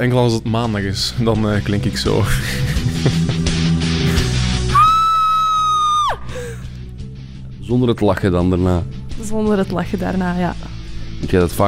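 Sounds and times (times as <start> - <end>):
speech: 0.0 - 3.3, 7.7 - 11.6
laughter: 2.2 - 4.3
loud high-pitched human scream: 4.7 - 6.3.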